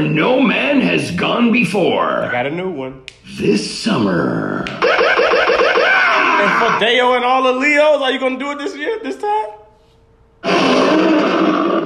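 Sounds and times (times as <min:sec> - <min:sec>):
speech: 0:00.0 - 0:05.2, 0:06.4 - 0:09.6
person doing a raspy imitation of a lion roar: 0:10.4 - 0:11.8.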